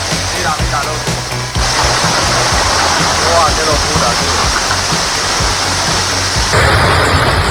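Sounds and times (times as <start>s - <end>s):
faint low rumbles: 0.0s - 7.4s
heavy torrential downpour: 0.0s - 7.4s
indistinct voices: 0.0s - 7.4s.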